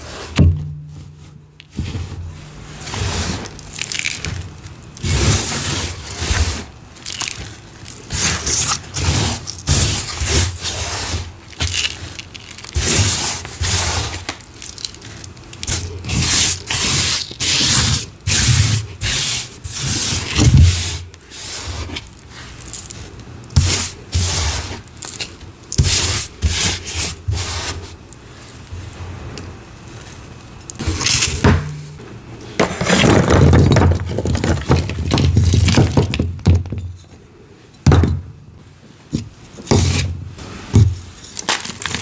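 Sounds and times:
gym chalk shards crushed under a rolling pin: 0.0 - 37.2, 39.1 - 42.0.

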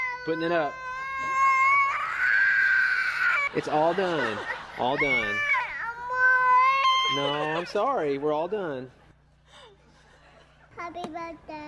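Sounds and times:
toddler wailing in a meltdown: 0.0 - 3.5, 4.1 - 8.1
speech: 0.2 - 1.3, 3.5 - 5.6, 7.1 - 9.0, 10.8 - 11.6
laughter: 3.3 - 5.7.

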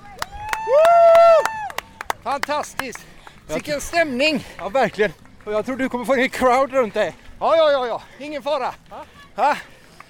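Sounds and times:
hands clapping: 0.1 - 5.8
person whooping imitating a cheering crowd at a running race: 0.3 - 1.8
speech: 2.3 - 9.7.

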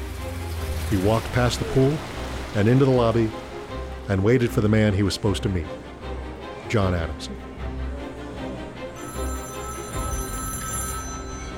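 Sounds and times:
speech: 0.9 - 3.4, 4.1 - 5.8, 6.7 - 7.5
telephone bell ringing: 9.0 - 11.5.

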